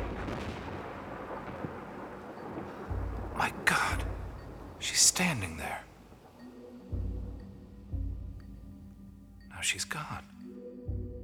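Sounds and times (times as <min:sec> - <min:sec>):
deep rumbling thunder of an approaching storm: 0:00.0 - 0:06.4
steady rain-like hiss: 0:00.0 - 0:10.6
speech: 0:04.8 - 0:05.9, 0:09.7 - 0:10.4.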